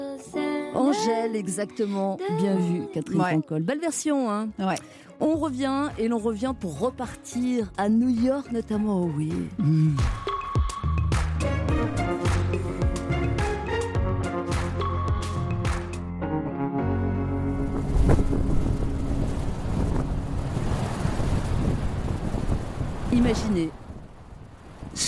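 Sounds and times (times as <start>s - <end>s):
short musical passage: 0.0s - 20.6s
speech: 0.7s - 10.3s, 23.3s - 23.8s
strong wind buffeting the microphone: 17.5s - 25.0s
heavy sea waves surging and crashing: 17.6s - 25.0s.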